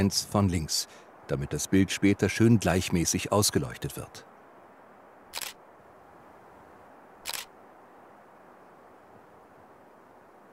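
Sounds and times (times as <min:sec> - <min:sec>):
speech: 0:00.0 - 0:04.3
faint steady hiss: 0:00.0 - 0:10.5
remote-controlled camera shutter clicks: 0:05.4 - 0:05.6, 0:07.2 - 0:07.5.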